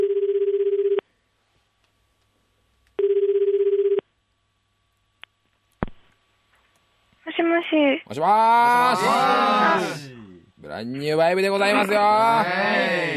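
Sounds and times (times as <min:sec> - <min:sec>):
outgoing phone call ringback tones: 0:00.0 - 0:01.0, 0:03.0 - 0:04.0
speech: 0:07.6 - 0:10.1, 0:10.7 - 0:13.1.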